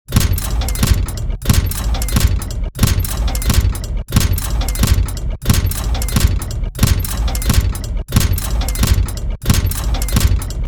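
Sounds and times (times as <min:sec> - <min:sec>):
heavy industrial press machinery: 0:00.0 - 0:10.6.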